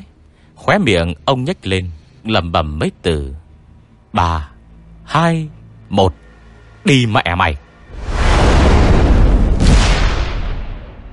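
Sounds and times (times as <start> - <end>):
speech: 0.7 - 3.4, 4.1 - 4.5, 5.1 - 6.2, 6.8 - 7.6
fireball explosion at a stairwell corner: 7.9 - 11.1.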